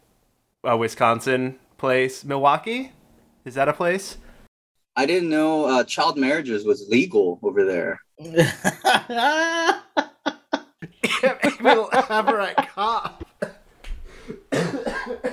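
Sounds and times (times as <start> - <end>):
speech: 0.6 - 4.2, 5.0 - 10.1, 11.0 - 13.2
laughter: 8.2 - 13.4
man coughing: 10.8 - 13.6, 14.3 - 15.3.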